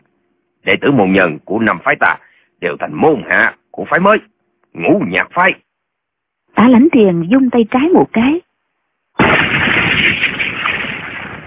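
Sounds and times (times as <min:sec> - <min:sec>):
speech: 0:00.6 - 0:05.6, 0:06.6 - 0:08.5
firecrackers exploding: 0:09.2 - 0:11.4.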